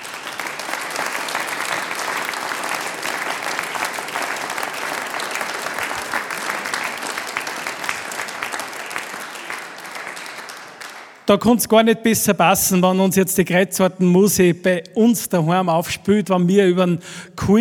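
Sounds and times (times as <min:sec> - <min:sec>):
audience applause: 0:00.0 - 0:11.3
speech: 0:11.3 - 0:17.6.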